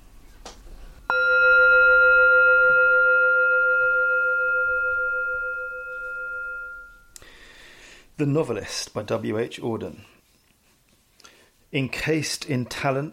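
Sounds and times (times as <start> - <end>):
gong ringing: 1.1 - 7.2
speech: 8.2 - 10.2, 11.7 - 13.1.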